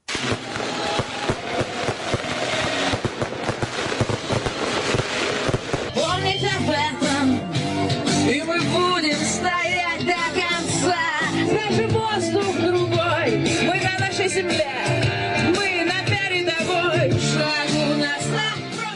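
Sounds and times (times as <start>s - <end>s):
fireworks crackling and popping outdoors at a street celebration in Donetsk: 0.0s - 6.8s
crowd cheering and singing at a street celebration: 0.0s - 18.9s.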